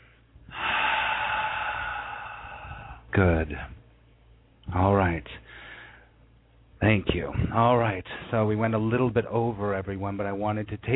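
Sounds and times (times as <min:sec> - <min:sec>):
deep breath drawn in during a guided meditation: 0:00.0 - 0:03.1, 0:05.4 - 0:06.2
speech: 0:03.2 - 0:03.8, 0:04.7 - 0:05.6, 0:06.8 - 0:10.9.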